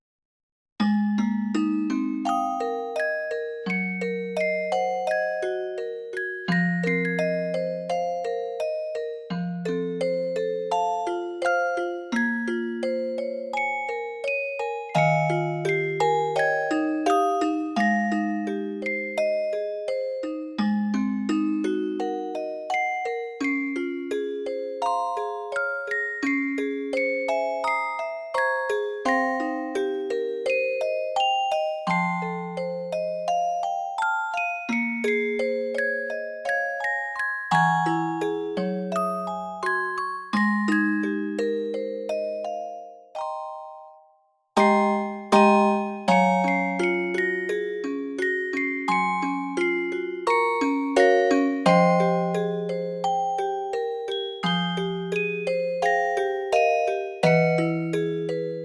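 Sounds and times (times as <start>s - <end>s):
visual novel background music on celesta: 0.8s - 58.6s.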